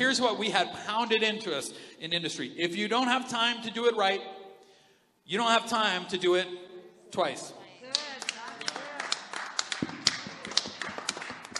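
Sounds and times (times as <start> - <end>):
speech: 0.0 - 4.4, 5.3 - 7.6
single person clapping hands: 7.9 - 11.5.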